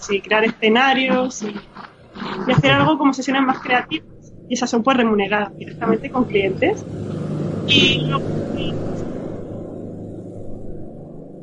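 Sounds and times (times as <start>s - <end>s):
motorcycle engine rumbling past: 0.0s - 11.4s
speech: 0.1s - 8.8s.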